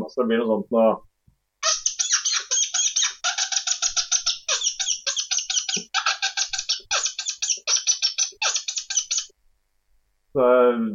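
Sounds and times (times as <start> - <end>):
speech: 0.1 - 1.1, 10.4 - 10.9
fox-call whistle blown with lips smacked into it, mimicking angry rodent squeaks: 1.6 - 9.3.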